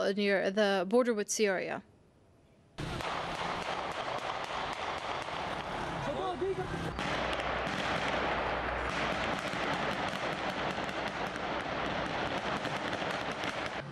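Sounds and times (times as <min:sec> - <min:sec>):
speech: 0:00.1 - 0:01.9
smoke grenades fired by police popping and banging in a street clash in Cizre: 0:02.8 - 0:05.8, 0:06.9 - 0:13.8.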